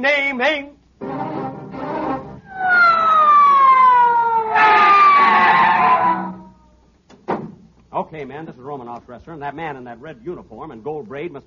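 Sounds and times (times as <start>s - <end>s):
speech: 0.0s - 1.3s, 8.0s - 11.4s
police squad car siren wailing: 2.0s - 6.7s.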